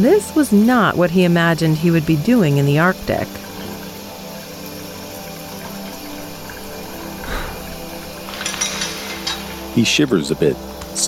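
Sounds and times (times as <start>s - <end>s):
speech: 0.0s - 3.5s, 9.8s - 11.0s
steamy shower water pouring into a small porcelain tub: 0.0s - 11.0s
light clinks and knocks: 8.0s - 9.8s.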